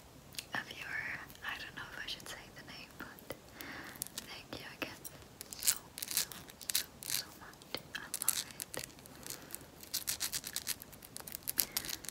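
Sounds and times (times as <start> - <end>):
faint hiss: 0.0 - 12.1
rings being scratched: 4.0 - 12.1.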